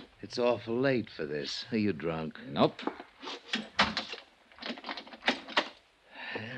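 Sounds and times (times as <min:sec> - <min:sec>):
speech: 0:00.2 - 0:03.7
door being pushed shut and locked with latch and bolt: 0:03.5 - 0:05.8.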